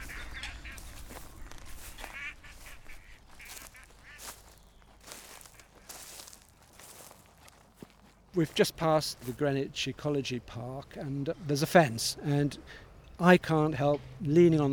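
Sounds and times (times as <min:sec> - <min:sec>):
family of coots calling: 0:00.0 - 0:09.5
steady outdoor noise: 0:00.0 - 0:14.7
young coot chicks peeping: 0:03.3 - 0:08.0
speech: 0:08.4 - 0:14.7.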